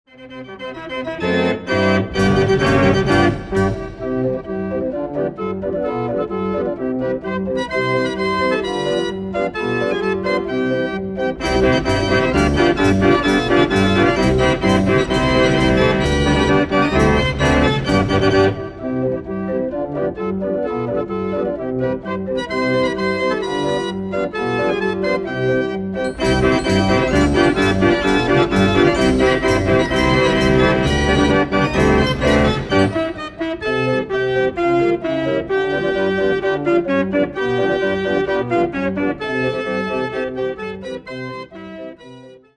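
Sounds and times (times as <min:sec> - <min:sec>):
36-key concert organ playing: 0:00.3 - 0:42.1.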